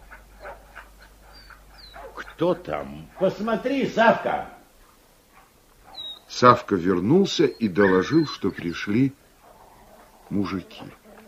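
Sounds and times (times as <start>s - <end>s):
dog whining in high tones: 0.0s - 3.4s, 5.4s - 6.3s, 7.0s - 11.2s
dogs barking in short yelps: 0.0s - 11.2s
speech: 2.4s - 4.6s, 6.4s - 9.2s, 10.3s - 11.0s.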